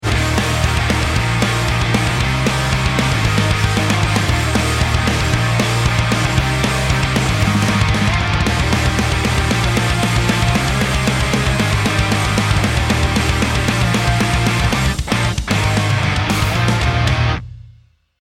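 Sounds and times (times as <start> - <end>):
music: 0.0 - 18.2.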